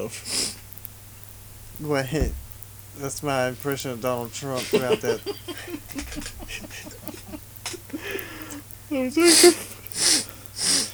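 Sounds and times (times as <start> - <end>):
speech: 0.0 - 0.4, 1.8 - 2.4, 3.0 - 8.3, 8.9 - 10.1
man making exaggerated imitated sniffs: 0.2 - 0.6, 4.6 - 10.9
laughter: 3.0 - 10.1.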